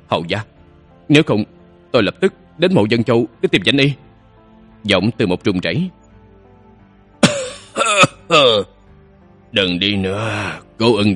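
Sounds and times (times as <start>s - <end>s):
speech: 0.1s - 0.5s, 1.1s - 4.0s, 4.8s - 6.0s, 8.3s - 8.7s, 9.5s - 11.1s
harsh voiced dry coughs of a gravely ill elderly nobleman: 7.2s - 8.7s.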